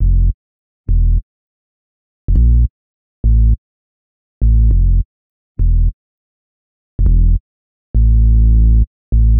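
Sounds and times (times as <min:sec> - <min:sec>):
bass in F minor at 102 BPM: 0:00.0 - 0:01.3, 0:02.3 - 0:03.6, 0:04.4 - 0:06.0, 0:07.0 - 0:09.3.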